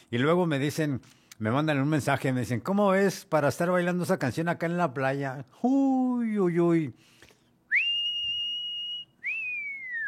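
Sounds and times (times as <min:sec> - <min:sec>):
speech: 0:00.1 - 0:07.1
person whistling: 0:07.7 - 0:10.0.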